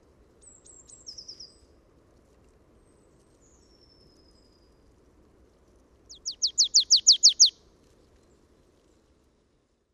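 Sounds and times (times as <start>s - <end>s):
marsh tit calls, Poecile palustris: 6.1s - 7.5s.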